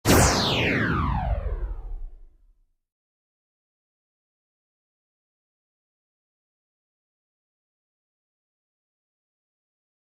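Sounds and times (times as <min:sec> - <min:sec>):
laser sound effects for newscaster radio broadcasting: 0:00.1 - 0:02.4.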